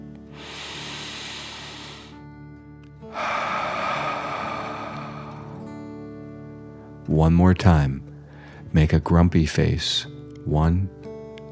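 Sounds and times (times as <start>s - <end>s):
deep breathing in and out during a guided relaxation exercise: 0.3s - 2.3s, 3.0s - 6.6s, 8.2s - 8.7s
speech: 7.1s - 8.1s, 8.7s - 11.0s.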